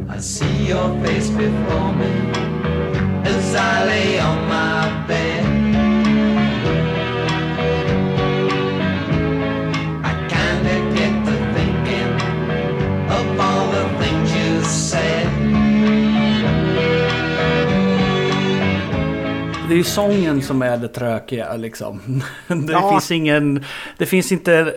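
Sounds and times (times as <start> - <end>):
male lead vocal singing in a late-sixties pop song: 0.1 - 2.5, 10.1 - 12.4, 13.1 - 15.5, 22.7 - 23.2
late-sixties pop band backing with sustained chords: 0.1 - 19.7
speech: 0.2 - 2.5, 19.8 - 24.7
laughter: 22.4 - 23.1.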